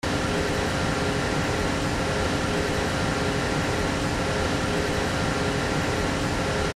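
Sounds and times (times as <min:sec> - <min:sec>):
steady filling station ambience: 0:00.0 - 0:06.7.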